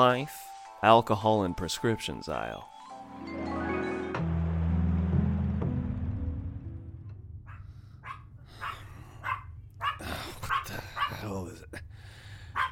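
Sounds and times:
speech: 0:00.0 - 0:03.5
loud sustained musical chord: 0:00.0 - 0:07.4
dog barking: 0:07.4 - 0:11.3.

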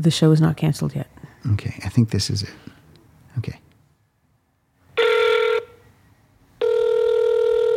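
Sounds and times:
speech: 0:00.0 - 0:02.8, 0:03.4 - 0:03.6
electronic telephone ring from a woman's phone being called: 0:05.0 - 0:05.8, 0:06.6 - 0:07.7.

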